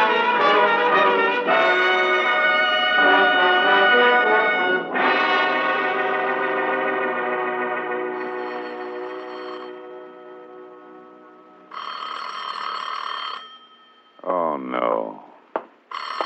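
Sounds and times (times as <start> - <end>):
sustained musical tone: 0.0 - 11.7
telephone bell ringing: 8.1 - 14.3, 15.9 - 16.2.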